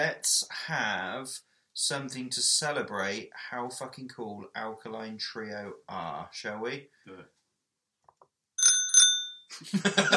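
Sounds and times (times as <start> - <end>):
speech: 0.0 - 7.4, 9.5 - 10.1
bicycle bell ringing: 8.6 - 9.5
laughter: 9.5 - 10.1.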